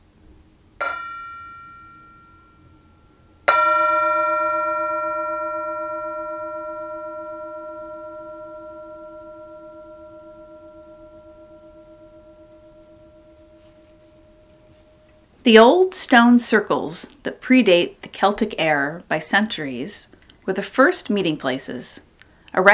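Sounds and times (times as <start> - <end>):
singing bowl struck and ringing: 0.8 - 15.8
speech: 15.4 - 22.7.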